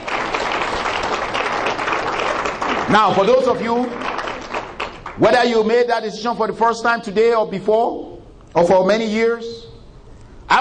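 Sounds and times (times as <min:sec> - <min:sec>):
church congregation clapping hands: 0:00.0 - 0:05.9
speech: 0:02.9 - 0:04.0, 0:05.2 - 0:09.7.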